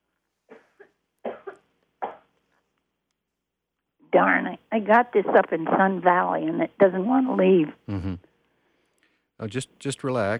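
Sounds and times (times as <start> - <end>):
speech: 4.1 - 8.3, 9.4 - 10.3
person coughing: 7.9 - 8.2.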